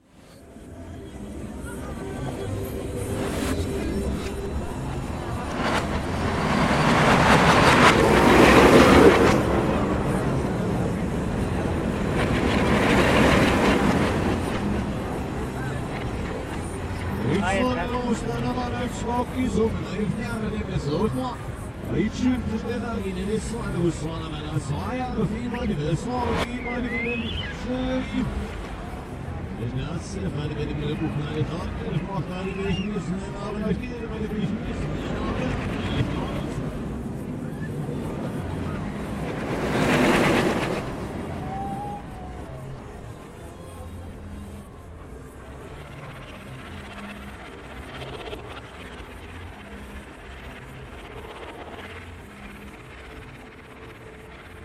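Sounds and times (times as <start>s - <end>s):
roller coaster: 0.2s - 54.6s.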